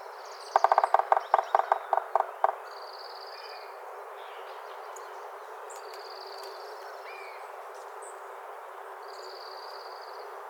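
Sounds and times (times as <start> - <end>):
yellow-bellied sapsucker drumming: 0.6 - 2.6.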